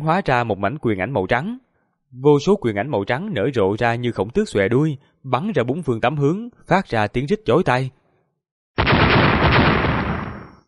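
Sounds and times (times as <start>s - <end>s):
speech: 0.0s - 8.0s
explosions in quick succession: 8.8s - 10.6s.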